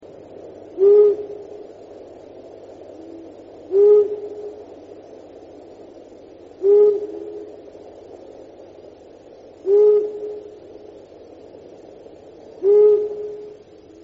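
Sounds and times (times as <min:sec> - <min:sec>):
long-eared owl hooting: 0:00.5 - 0:02.2, 0:02.8 - 0:05.3, 0:06.6 - 0:07.8, 0:09.5 - 0:11.0, 0:12.4 - 0:14.0.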